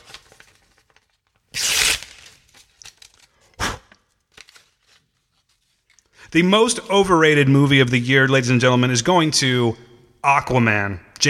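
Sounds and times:
paper envelope torn open to reveal an award winner: 0:00.0 - 0:05.8
speech: 0:06.3 - 0:11.2.

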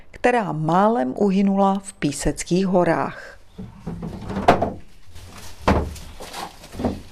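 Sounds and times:
speech: 0:00.2 - 0:03.8
faint rustling: 0:03.4 - 0:07.1
darkened wooden enclosure door at a wildlife rescue station being opened: 0:03.6 - 0:04.9, 0:05.6 - 0:06.0.

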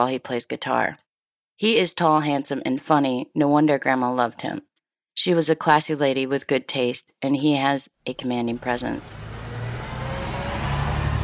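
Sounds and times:
speech: 0:00.0 - 0:01.0, 0:01.6 - 0:09.3
school bus engine rumbling as it rolls up to a bus stop: 0:08.3 - 0:11.2.

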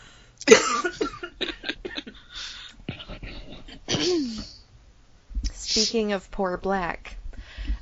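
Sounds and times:
two people coughing: 0:00.4 - 0:04.6
throat sounds: 0:01.0 - 0:04.6
speech: 0:05.8 - 0:07.1.

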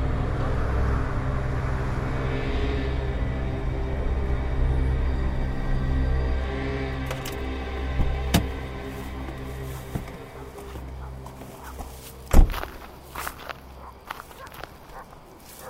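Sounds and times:
low engine-like hum: 0:00.0 - 0:15.6
car door thudding shut: 0:08.0 - 0:08.6, 0:12.3 - 0:12.7
footsteps on a hard surface: 0:08.4 - 0:15.6
heavy thud: 0:12.3 - 0:12.7.

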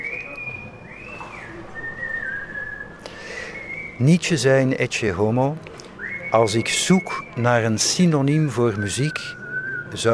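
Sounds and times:
gondolier whistling a slow melody: 0:00.0 - 0:04.0, 0:06.0 - 0:07.4, 0:08.7 - 0:10.1
outdoor ambient noise: 0:00.0 - 0:10.1
speech: 0:04.0 - 0:05.7, 0:06.3 - 0:10.1.

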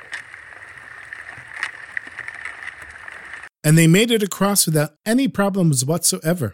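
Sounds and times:
small boat moving through icy water: 0:00.0 - 0:03.5
speech: 0:03.6 - 0:06.5.

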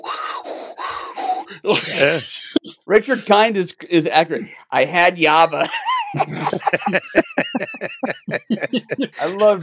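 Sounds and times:
person imitating a weightlifter's heavy breathing and grunting: 0:00.0 - 0:02.2, 0:09.0 - 0:09.6
laughter: 0:01.5 - 0:03.3, 0:05.2 - 0:09.6
speech: 0:01.5 - 0:09.6.

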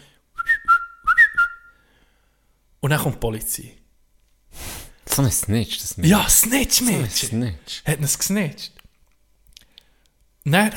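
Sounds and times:
person whistling a short lively tune imitating a particular whistle: 0:00.3 - 0:01.8
speech: 0:02.8 - 0:03.8, 0:05.2 - 0:08.8, 0:10.4 - 0:10.7.

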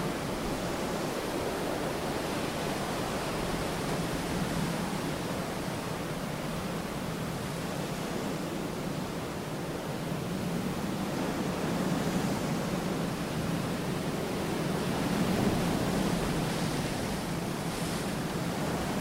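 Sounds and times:
dense ocean wash in the middle of the ocean: 0:00.0 - 0:18.9.

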